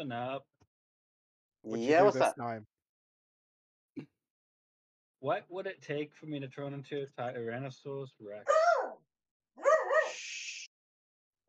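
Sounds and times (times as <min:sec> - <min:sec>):
speech: 0:00.0 - 0:00.6, 0:01.6 - 0:02.7, 0:04.0 - 0:04.2, 0:05.2 - 0:09.0
cockapoo dog barking: 0:08.5 - 0:09.0, 0:09.6 - 0:10.2.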